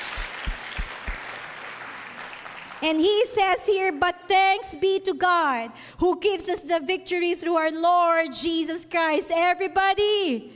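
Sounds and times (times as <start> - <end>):
church congregation clapping hands in worship: 0.0 - 3.4
speech: 2.8 - 10.5.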